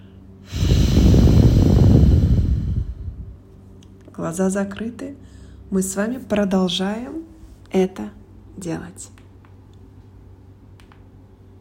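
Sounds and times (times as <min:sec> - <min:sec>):
deep loud inhale through the left nostril during alternate-nostril breathing: 0:00.4 - 0:03.4
speech: 0:04.3 - 0:09.2.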